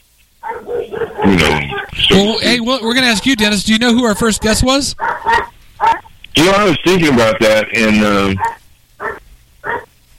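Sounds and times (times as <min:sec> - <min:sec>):
faint low hum: 0:00.0 - 0:10.1
dog barking: 0:00.4 - 0:02.0, 0:03.0 - 0:03.5, 0:04.2 - 0:06.1, 0:08.4 - 0:09.9
speech: 0:00.9 - 0:05.5, 0:06.4 - 0:08.6.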